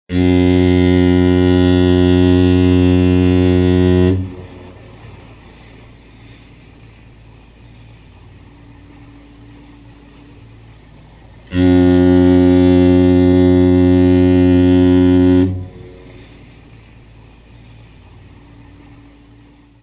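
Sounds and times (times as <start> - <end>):
foghorn: 0.1 - 6.8, 8.5 - 19.8.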